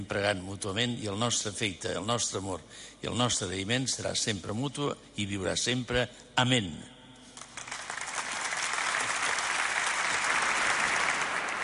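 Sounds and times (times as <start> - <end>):
speech: 0.0 - 7.0
large gathering applauding: 7.4 - 11.6.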